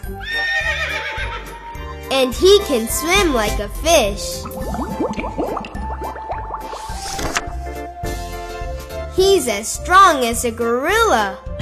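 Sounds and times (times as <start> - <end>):
speech: 0.1 - 0.4, 2.1 - 5.4, 9.2 - 11.4
horse whinnying: 0.2 - 1.6.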